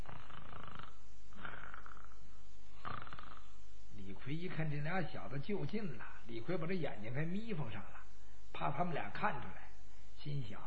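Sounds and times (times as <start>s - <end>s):
storyteller's male voice imitating loud snoring: 0.0s - 3.6s
speech: 4.3s - 9.6s, 10.2s - 10.6s.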